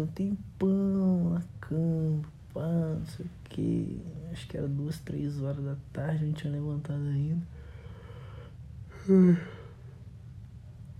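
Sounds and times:
speech: 0.0 - 7.6, 9.0 - 9.6
person yawning with a voiced groan: 8.9 - 9.8.

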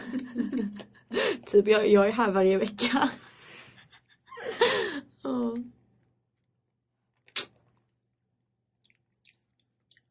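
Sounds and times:
laughter: 0.0 - 1.0
speech: 1.5 - 3.2
sharp crunchy bite: 7.2 - 7.8
loud wet smacking mouth chewing: 8.8 - 10.0.

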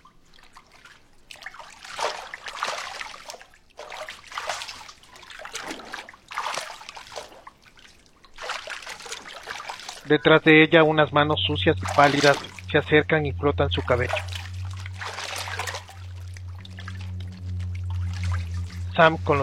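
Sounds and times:
water splashing in a bathtub as someone scoops it onto their face: 0.0 - 19.4
speech: 10.1 - 14.3, 19.0 - 19.4.

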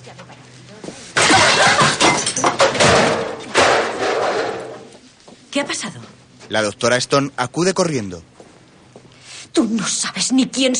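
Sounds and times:
objects swept by hand off a reception counter crashing down: 1.2 - 4.9
speech: 5.6 - 8.3, 9.6 - 10.7.

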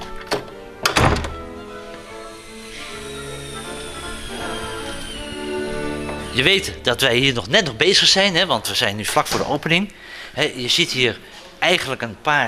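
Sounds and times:
heavy warehouse door swinging shut on its own and thudding closed: 0.2 - 1.6
steady mechanical hum with a faint high whine: 1.4 - 7.8
speech: 6.4 - 12.4.

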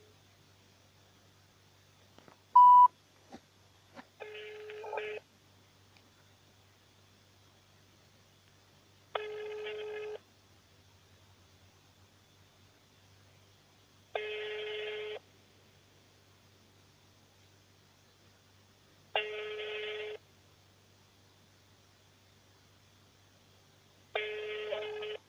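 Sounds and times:
faint hiss: 0.0 - 25.2
short electronic beep: 2.6 - 2.9.

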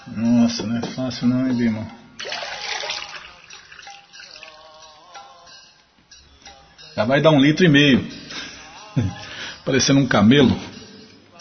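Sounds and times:
speech: 0.1 - 2.0, 7.0 - 8.2, 9.0 - 10.7
drinking water poured into a glass or bottle: 2.2 - 4.9.

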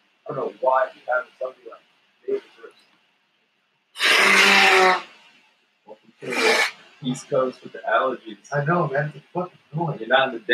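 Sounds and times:
speech: 0.3 - 2.9, 6.2 - 10.5
person blowing their nose: 4.0 - 5.1, 6.2 - 6.8
soft sniffs or throat noises: 6.2 - 6.7.

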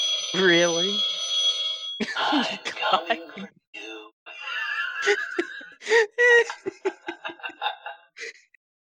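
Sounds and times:
classic telephone ringtone ringing: 0.0 - 3.3
speech: 0.3 - 1.2, 2.0 - 3.6, 5.0 - 7.0
laughter: 2.0 - 3.5, 4.3 - 8.6.

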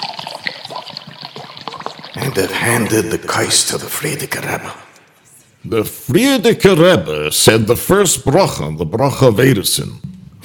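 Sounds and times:
wine pouring into a cup: 0.0 - 3.0
speech: 2.2 - 4.9, 5.6 - 10.4.

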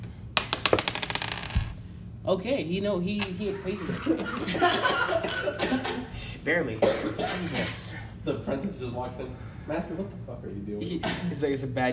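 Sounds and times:
small white die rolling on a hard tabletop: 0.4 - 1.8
speech: 2.3 - 11.9
laughter: 3.6 - 6.1.

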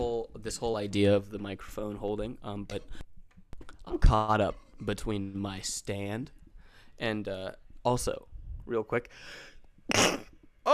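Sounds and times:
speech: 0.4 - 3.0, 3.9 - 6.4, 7.0 - 10.7
single sharp sneeze: 9.9 - 10.4.

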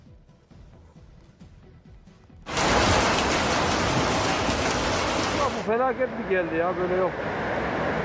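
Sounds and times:
heavy June rain pouring down in Ankara Turkey: 2.5 - 5.9
speech: 5.7 - 7.4.

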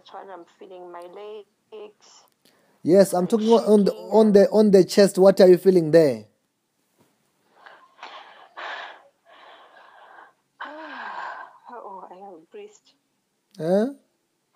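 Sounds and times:
speech: 0.1 - 6.3, 13.6 - 14.0
loud rough heavy breathing: 7.5 - 11.6.

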